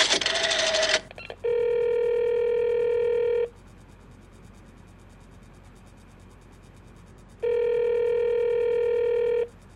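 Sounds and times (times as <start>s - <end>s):
telephone being dialed with a noisy rattle: 0.0s - 1.2s
long steady electronic ringing tones on the telephone line: 0.4s - 3.5s, 7.4s - 9.5s.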